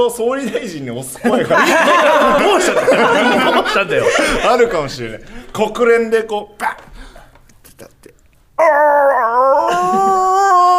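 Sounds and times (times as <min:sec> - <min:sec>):
speech: 0:00.0 - 0:06.9, 0:08.6 - 0:09.9
laughter: 0:01.2 - 0:05.3, 0:09.7 - 0:10.6
person imitating a dog howling into a radio microphone: 0:08.6 - 0:10.7.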